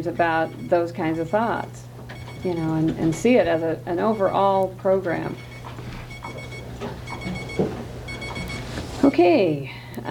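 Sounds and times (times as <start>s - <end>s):
speech: 0.0s - 5.5s, 9.2s - 10.1s
timer buzzer high-pitched electronic beeps: 0.0s - 9.4s
steady low hum: 0.0s - 10.1s.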